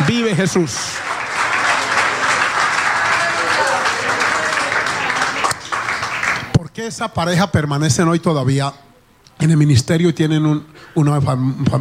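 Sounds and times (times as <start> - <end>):
crowd applauding: 0.0 - 6.6
speech: 0.1 - 1.1, 6.8 - 11.7.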